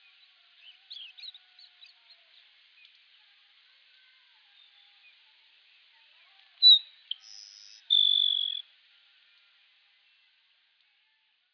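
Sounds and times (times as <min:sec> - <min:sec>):
grassland sparrow Ammodramus humeralis humeralis singing: 0:06.6 - 0:08.6.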